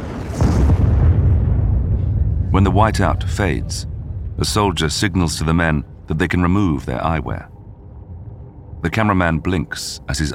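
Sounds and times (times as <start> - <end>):
loud deep explosion: 0.0 - 6.1
low rumbling roar of an explosion: 0.6 - 9.5
speech: 2.6 - 7.5, 8.8 - 10.3.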